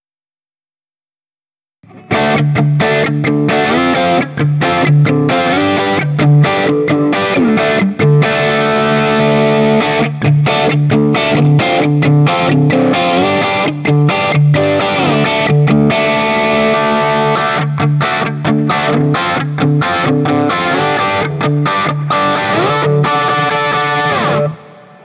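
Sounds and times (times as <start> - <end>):
Guild Burnside Crossbow electric guitar through JCM800 amplifier playing D chord: 1.8 - 25.0.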